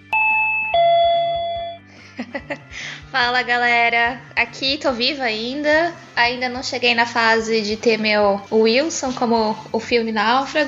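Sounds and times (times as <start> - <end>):
doorbell chiming a two-note ding-dong: 0.0 - 1.9
laughter: 2.0 - 2.9
speech: 2.2 - 10.6.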